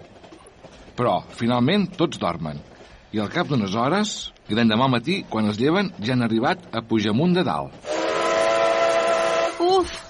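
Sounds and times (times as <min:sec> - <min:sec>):
speech: 0:01.0 - 0:07.9
steam train whistle blowing as the train arrives: 0:07.8 - 0:09.8.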